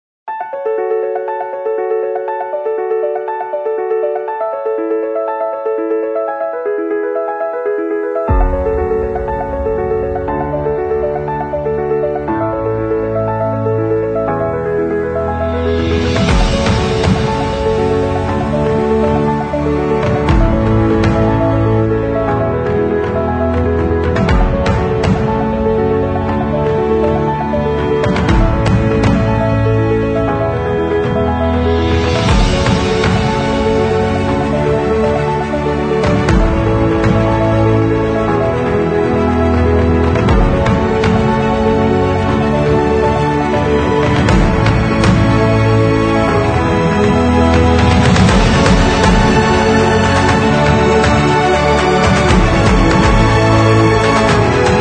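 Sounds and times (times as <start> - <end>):
epic orchestral film trailer music: 0.3 - 54.8
cinematic booms: 8.3 - 13.2, 15.6 - 35.4, 39.6 - 54.8
bass: 8.3 - 54.8.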